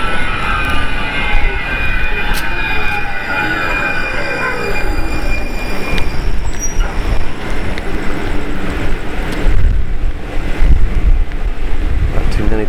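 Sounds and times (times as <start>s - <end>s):
train wheels squealing as the train slows at a station stop: 0.0s - 7.7s
steady low roar of an arriving train: 0.0s - 12.6s
wind buffeting: 0.0s - 12.6s.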